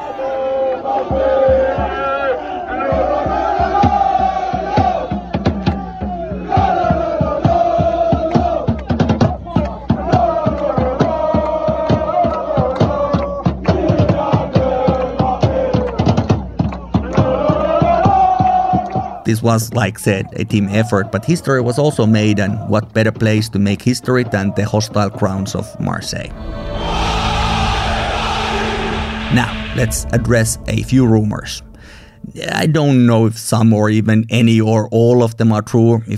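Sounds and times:
large crowd of football ultras cheering and chanting in unison at night: 0:00.0 - 0:19.2, 0:20.1 - 0:32.7
rhythmic shouts of crowd: 0:00.0 - 0:19.2, 0:23.9 - 0:31.0
speech: 0:19.3 - 0:27.3, 0:29.3 - 0:36.1.

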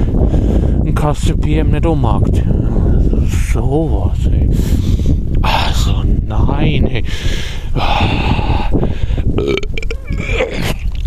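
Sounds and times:
speech: 0:01.0 - 0:10.8
loud drawn-out throaty gurgling burps: 0:09.4 - 0:10.8.

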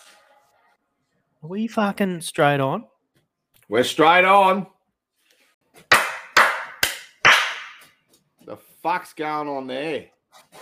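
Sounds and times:
speech: 0:01.4 - 0:02.9, 0:03.7 - 0:04.8, 0:08.5 - 0:10.6
hand claps: 0:05.9 - 0:08.0.

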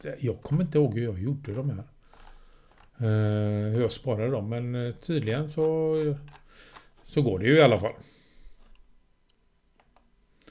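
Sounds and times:
speech: 0:00.0 - 0:01.9, 0:03.0 - 0:06.4, 0:07.1 - 0:08.1
computer mouse clicking: 0:01.4 - 0:03.0, 0:04.9 - 0:07.2, 0:08.5 - 0:10.4.

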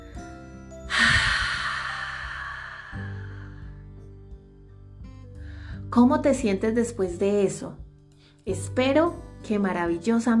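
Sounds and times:
slow deep exhale during a guided breathing exercise: 0:00.9 - 0:04.0
speech: 0:05.9 - 0:07.8, 0:08.4 - 0:10.3.

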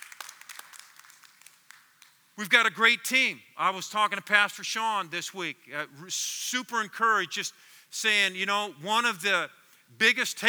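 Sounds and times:
church audience clapping: 0:00.0 - 0:02.6
speech: 0:02.4 - 0:10.4.

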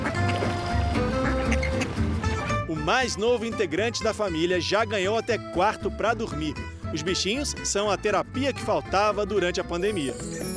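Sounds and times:
pet duck quacking at a family home: 0:00.0 - 0:02.6
speech: 0:02.9 - 0:10.5.

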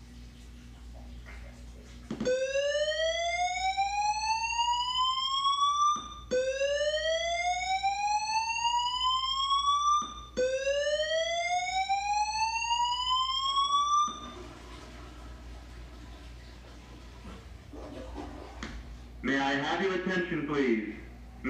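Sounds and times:
fire alarm rising whoops in Love Park, Philadelphia: 0:02.2 - 0:14.8
man speaking: 0:19.2 - 0:21.4.

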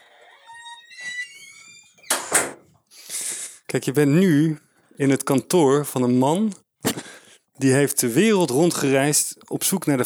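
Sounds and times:
door hinges creaking: 0:00.0 - 0:02.8
speech: 0:03.7 - 0:07.0, 0:07.6 - 0:10.0.

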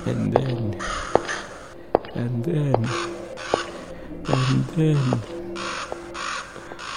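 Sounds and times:
speech: 0:00.1 - 0:01.1, 0:02.2 - 0:03.1, 0:04.5 - 0:05.4
raven cawing: 0:00.7 - 0:02.1, 0:02.8 - 0:06.9.

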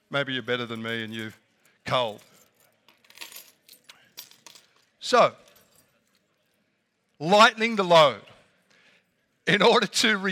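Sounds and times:
speech: 0:00.1 - 0:02.3, 0:05.0 - 0:05.4, 0:07.2 - 0:08.3, 0:09.5 - 0:10.3
many sets of keys jangling across a room: 0:00.6 - 0:06.5.

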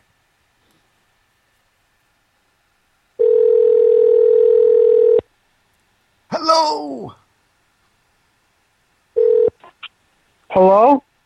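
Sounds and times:
telephone dial tone while adding a call: 0:03.2 - 0:05.2, 0:09.2 - 0:09.6
speech: 0:10.6 - 0:11.1.

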